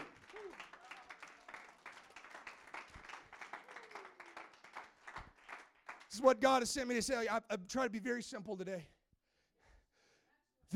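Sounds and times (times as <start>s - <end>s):
people calling out and cheering: 0.0s - 6.5s
audience clapping and applauding: 0.0s - 7.0s
speech: 6.2s - 9.0s.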